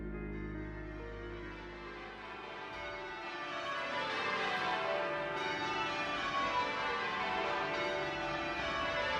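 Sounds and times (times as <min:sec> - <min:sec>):
church bells ringing in a full peal: 0:00.2 - 0:09.1.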